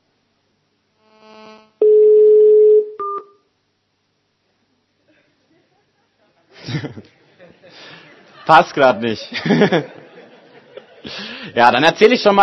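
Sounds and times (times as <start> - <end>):
steady electronic dial tone of a phone call: 1.1 - 3.4
person chuckling: 5.0 - 7.9
speech: 8.5 - 10.0, 11.1 - 12.4.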